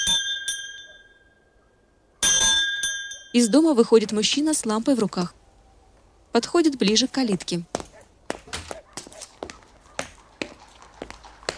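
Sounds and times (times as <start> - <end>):
bell ringing at a garden gate in the evening: 0.0 - 1.6, 2.2 - 4.1
speech: 3.4 - 5.4, 6.3 - 7.8.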